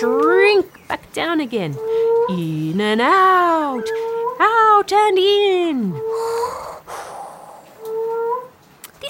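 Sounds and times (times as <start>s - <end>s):
speech: 0.0s - 6.5s
male moaning frog calling: 6.0s - 8.5s.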